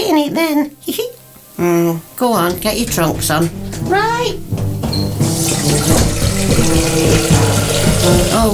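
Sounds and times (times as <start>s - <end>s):
speech: 0.0s - 4.5s, 6.4s - 8.5s
water gushing from a tap into a bowl: 5.0s - 8.5s.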